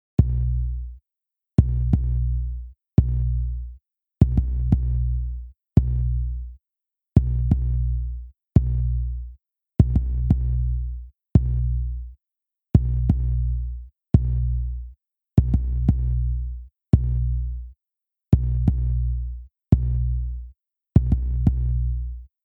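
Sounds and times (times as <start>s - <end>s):
hip hop sub kick drum: 0.2s - 0.9s, 1.6s - 2.3s, 3.0s - 3.4s, 4.2s - 5.1s, 5.8s - 6.2s, 7.2s - 7.8s, 9.8s - 10.7s, 11.4s - 11.8s, 12.8s - 13.5s, 14.2s - 14.6s, 15.4s - 16.3s, 17.0s - 17.4s, 18.4s - 19.1s, 19.8s - 20.2s, 21.0s - 22.0s.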